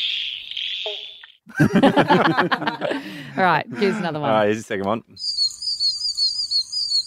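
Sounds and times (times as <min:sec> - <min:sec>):
pobblebonk frog hollow low bonk call: 0:00.0 - 0:01.2
laughter: 0:01.5 - 0:04.4
speech: 0:01.6 - 0:05.3.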